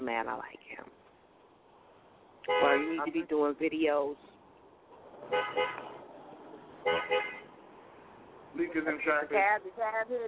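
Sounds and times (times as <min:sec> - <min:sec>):
low rumble of street traffic: 0:00.0 - 0:10.2
speech: 0:00.1 - 0:01.0, 0:02.4 - 0:04.3, 0:05.2 - 0:05.9, 0:08.5 - 0:10.2
car horn honking in double beeps: 0:02.4 - 0:03.2, 0:05.3 - 0:06.0, 0:06.8 - 0:07.6.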